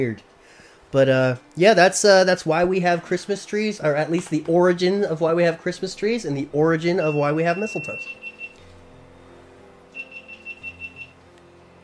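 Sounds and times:
speech: 0.0s - 0.3s, 0.9s - 8.2s
rapid high electronic beeping: 6.9s - 8.6s, 10.0s - 11.2s.

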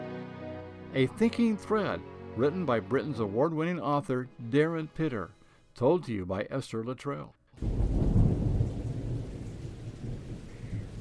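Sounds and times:
speech: 0.9s - 7.8s
rain falling: 7.6s - 10.9s
thunder rumbling: 7.6s - 10.9s.

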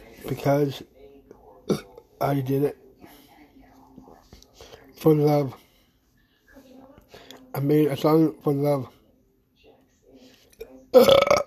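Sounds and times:
speech: 0.2s - 0.9s, 1.7s - 2.8s, 5.0s - 5.6s, 7.6s - 9.0s, 10.9s - 11.4s
loud drawn-out gurgling burp: 10.9s - 11.4s.

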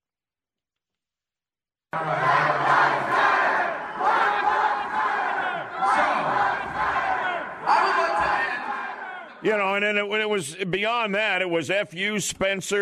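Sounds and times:
speech: 2.0s - 2.2s, 9.4s - 12.8s
large protest crowd chanting slogans in unison: 2.0s - 9.4s.

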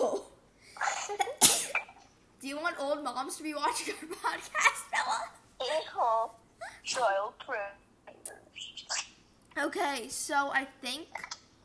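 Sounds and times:
person sneezing: 0.8s - 1.9s
speech: 2.8s - 5.3s, 6.0s - 7.8s, 9.6s - 11.3s.

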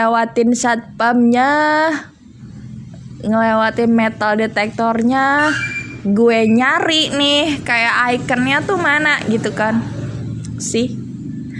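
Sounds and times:
speech: 0.0s - 2.1s, 3.2s - 10.0s, 10.6s - 11.0s
road traffic passing: 0.0s - 11.5s.

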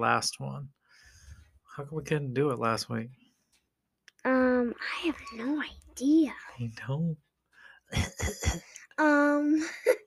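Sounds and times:
speech: 0.0s - 0.8s, 1.8s - 3.2s, 4.2s - 7.2s, 7.9s - 10.0s
adult man coughing: 7.9s - 8.7s.

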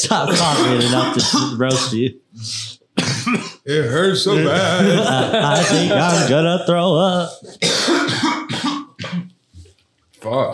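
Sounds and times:
harsh forceful coughs: 0.0s - 2.0s, 3.0s - 3.7s, 4.6s - 6.4s, 7.5s - 9.4s
speech: 0.0s - 8.2s, 10.2s - 10.5s
laughter: 4.2s - 7.2s.

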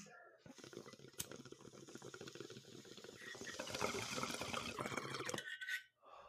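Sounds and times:
long inhale of smoke through a water pipe with bubbling: 0.5s - 5.5s.

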